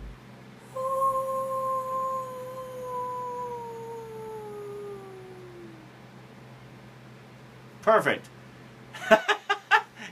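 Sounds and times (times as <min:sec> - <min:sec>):
person imitating a wolf howl: 0:00.7 - 0:05.9
speech: 0:07.8 - 0:08.4.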